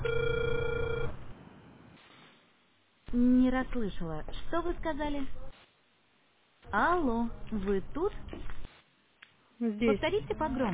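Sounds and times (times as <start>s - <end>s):
telephone ringback tone while a call is being dialed: 0.0s - 1.2s
faint telephone line hiss: 1.4s - 3.0s
speech: 3.2s - 5.4s, 6.7s - 8.5s, 9.6s - 10.7s.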